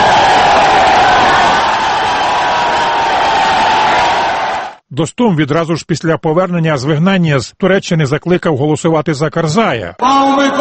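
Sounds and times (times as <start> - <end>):
large crowd of supporters cheering in Sheberghan, northern Afghanistan: 0.0 - 4.8
speech: 5.0 - 10.5.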